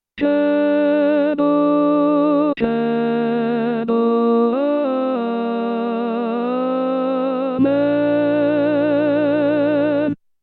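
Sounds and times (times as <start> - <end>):
tenors singing a Credo: 0.2 - 10.2.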